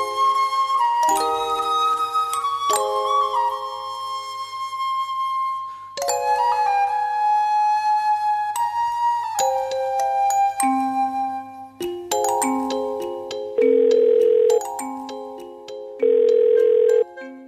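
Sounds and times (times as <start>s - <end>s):
soft tinkling melody: 0.0s - 7.4s, 8.5s - 17.4s
telephone ringback tone, call unanswered: 13.6s - 14.8s, 16.0s - 17.0s.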